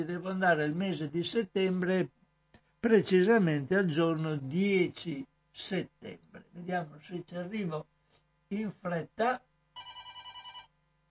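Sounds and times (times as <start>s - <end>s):
speech: 0.0s - 2.2s, 2.8s - 7.9s, 8.5s - 9.5s
hum: 0.0s - 11.0s
telephone ringing with electronic trill: 9.8s - 10.7s.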